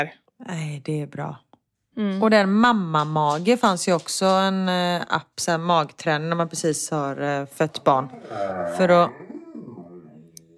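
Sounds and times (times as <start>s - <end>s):
speech: 0.0s - 1.4s, 2.0s - 9.3s
dog yawning with a whiny tone: 8.1s - 10.5s.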